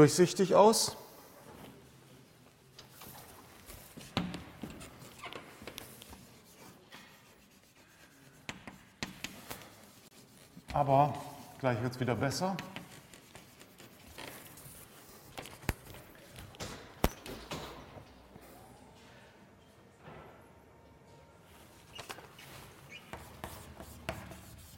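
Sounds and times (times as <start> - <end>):
speech: 0.0 - 1.0, 10.8 - 12.8
handwriting of a probability formula: 3.9 - 10.8, 12.6 - 16.2, 22.9 - 24.7.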